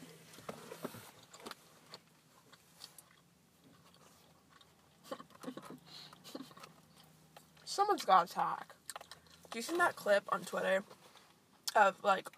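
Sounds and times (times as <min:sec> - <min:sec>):
chewing and biting into a bagel: 0:01.2 - 0:07.7, 0:08.8 - 0:09.6
speech: 0:07.8 - 0:08.8, 0:09.5 - 0:11.0, 0:11.8 - 0:12.3.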